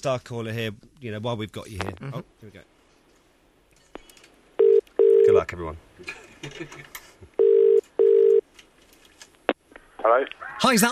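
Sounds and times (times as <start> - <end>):
speech: 0.0 - 2.8, 5.4 - 7.3, 10.0 - 10.8
ringing tone of an outgoing telephone call: 4.6 - 5.4, 7.4 - 8.4.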